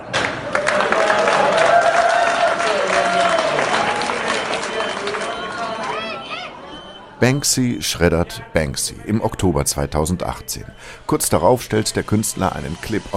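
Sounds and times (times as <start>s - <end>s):
excited chatter of auction audience: 0.0s - 13.1s
large indoor auction audience exclaiming in astonishment in London: 0.4s - 7.0s
speech: 7.2s - 13.1s.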